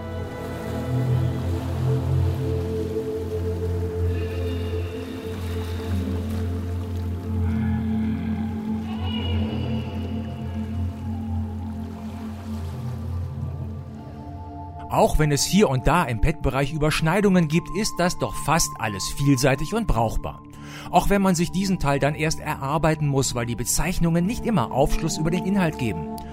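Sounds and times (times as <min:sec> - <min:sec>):
drawn-out underwater whale calls: 0:00.0 - 0:14.6
underwater ocean wash with deep rumbling swells: 0:00.0 - 0:14.8
speech: 0:14.9 - 0:26.3.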